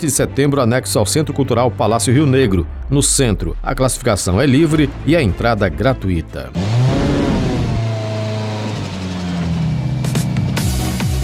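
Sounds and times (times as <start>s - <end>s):
speech: 0.0s - 7.0s
car engine revving: 2.1s - 11.0s.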